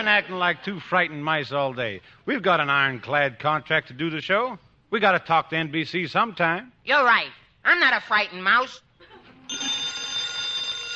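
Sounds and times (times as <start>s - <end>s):
speech: 0.0s - 8.8s
telephone bell ringing: 9.5s - 10.9s.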